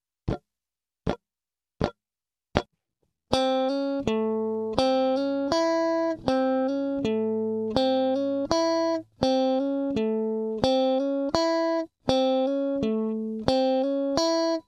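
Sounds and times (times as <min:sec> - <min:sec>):
blues guitar lick: 0:03.3 - 0:14.6.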